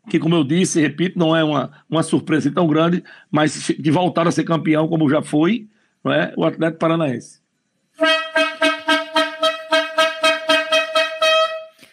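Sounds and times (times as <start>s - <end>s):
speech: 0.1s - 7.4s, 8.0s - 8.2s
loud brassy horn blasts: 8.0s - 11.9s.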